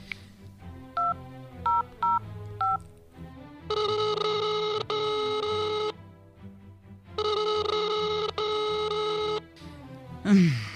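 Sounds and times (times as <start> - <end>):
telephone keypad beeps: 1.0 - 2.8, 3.7 - 6.0, 7.2 - 9.4.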